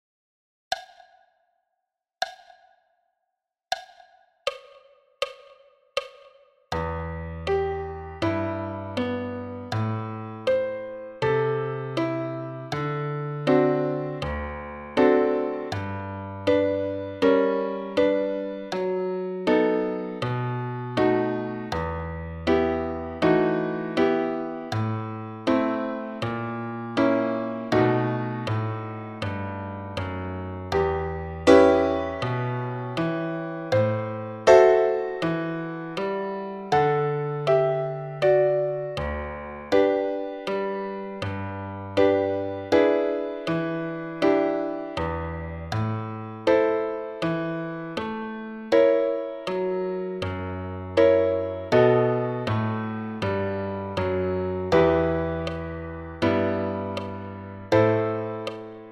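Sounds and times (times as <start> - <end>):
solo piano: 6.7 - 58.8.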